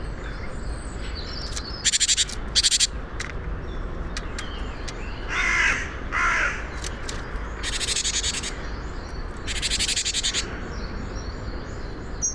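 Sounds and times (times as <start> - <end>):
Parus major harsh rattling churrs: 0.1 - 12.3.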